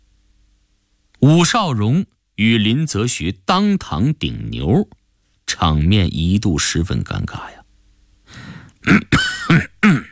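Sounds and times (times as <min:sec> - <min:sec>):
speech: 0:01.2 - 0:07.6, 0:08.8 - 0:09.7
person harshly clearing throat and coughing: 0:08.8 - 0:10.1.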